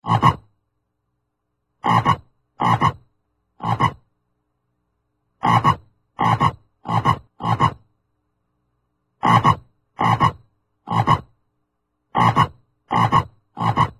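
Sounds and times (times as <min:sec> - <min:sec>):
bullfrog ribbit: 0:00.0 - 0:00.5, 0:01.8 - 0:04.1, 0:05.4 - 0:07.9, 0:09.2 - 0:11.4, 0:12.1 - 0:13.9.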